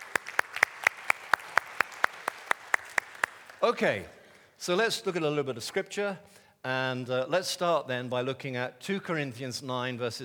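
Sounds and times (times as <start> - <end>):
church audience hand claps: 0.0 - 3.6
speech: 3.6 - 10.2.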